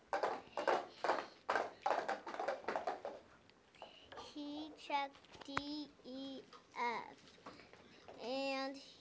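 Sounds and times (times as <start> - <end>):
horse hooves clip-clopping: 0.0 - 3.3
speech: 4.9 - 7.6, 8.2 - 8.9.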